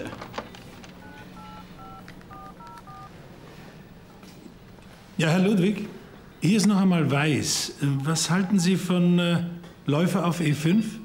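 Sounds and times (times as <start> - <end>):
touch-tone beeps from a phone keypad: 1.0 - 3.1
speech: 5.2 - 11.0.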